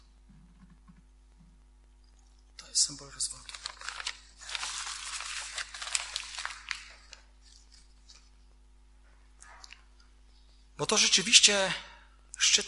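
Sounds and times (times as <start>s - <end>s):
speech: 2.8s - 3.7s, 10.8s - 12.6s
paper rustling: 3.3s - 8.4s
sheets of paper being torn: 3.5s - 7.9s.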